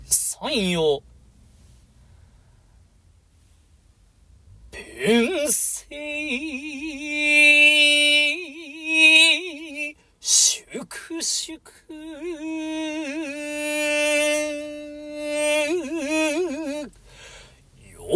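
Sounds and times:
solo male voice chanting a Japanese shigin poem with melismatic ornaments: 0:00.0 - 0:01.0, 0:04.8 - 0:16.9
speech: 0:00.4 - 0:01.1, 0:05.0 - 0:08.6, 0:10.8 - 0:17.0.

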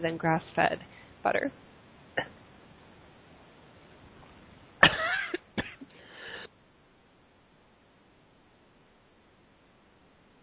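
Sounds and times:
speech: 0:00.0 - 0:02.3
person coughing harshly: 0:04.8 - 0:06.0.

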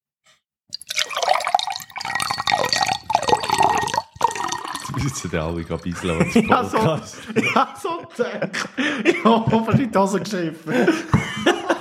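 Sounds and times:
water pouring into a glass with a rising ringing tone: 0:00.7 - 0:07.0
laughter: 0:04.9 - 0:11.7
speech: 0:05.0 - 0:11.2.

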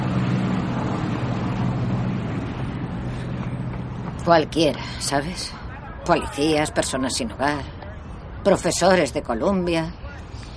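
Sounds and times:
boat engine drone on a river: 0:00.0 - 0:09.6
wind: 0:00.0 - 0:10.5
speech: 0:04.2 - 0:07.8, 0:08.4 - 0:10.5.

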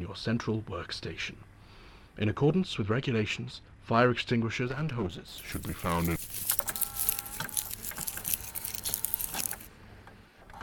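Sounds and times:
speech: 0:00.1 - 0:01.5, 0:02.2 - 0:06.7
tape machine jamming and chewing up a tape: 0:05.4 - 0:09.7.

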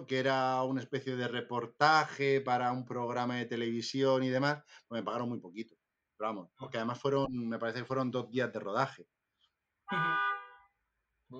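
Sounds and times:
speech: 0:00.0 - 0:09.2, 0:09.9 - 0:10.3
car horn honking in the street below: 0:09.9 - 0:10.7.

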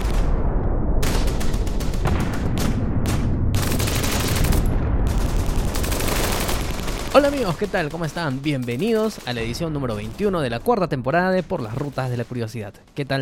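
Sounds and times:
rifle grenades booming from German positions at night: 0:00.0 - 0:10.7
machine gun fire from German positions at night: 0:01.0 - 0:10.6
speech: 0:07.2 - 0:13.2.

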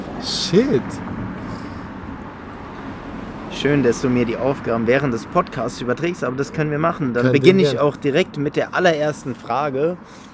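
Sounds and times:
car passing by outside: 0:00.0 - 0:06.4
speech: 0:00.2 - 0:01.2, 0:03.6 - 0:10.3.

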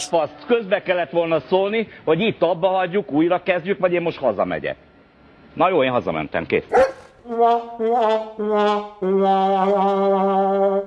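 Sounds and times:
speech: 0:00.0 - 0:04.9, 0:05.6 - 0:10.8
dogs barking in drawn-out howl-like calls: 0:06.7 - 0:07.1.

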